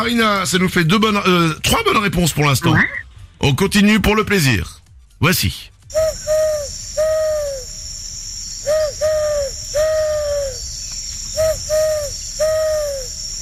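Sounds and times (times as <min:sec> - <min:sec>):
speech: 0:00.0 - 0:06.4
person imitating owl hoots: 0:05.9 - 0:07.7, 0:08.7 - 0:10.7, 0:11.4 - 0:13.2
steady high insect-like hiss: 0:05.9 - 0:13.4.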